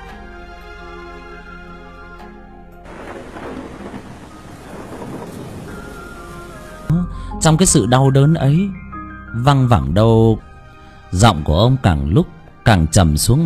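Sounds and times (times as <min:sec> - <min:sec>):
steady tonal background: 0:00.0 - 0:13.4
rumbling thunder in a sudden thunderstorm: 0:02.9 - 0:06.9
wind-driven rain in a sudden thunderstorm: 0:02.9 - 0:06.9
speech: 0:07.4 - 0:10.5, 0:11.1 - 0:13.4.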